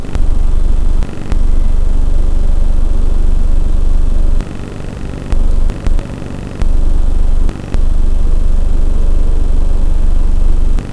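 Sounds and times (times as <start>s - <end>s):
tones: 0.0s - 4.4s, 5.3s - 6.0s, 6.6s - 10.8s.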